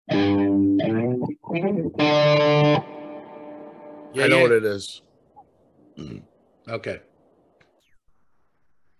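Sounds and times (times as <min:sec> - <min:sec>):
distorted electric guitar riff: 0:00.1 - 0:04.4
speech: 0:01.5 - 0:03.0, 0:04.1 - 0:05.1, 0:06.0 - 0:07.1.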